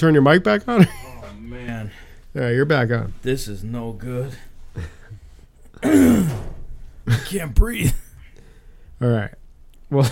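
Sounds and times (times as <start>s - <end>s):
speech: 0.0s - 5.0s, 5.8s - 8.0s, 9.0s - 10.1s
person coughing: 5.8s - 6.5s.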